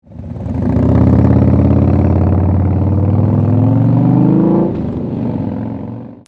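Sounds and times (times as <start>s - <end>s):
motorcycle taking off: 0.0s - 6.2s.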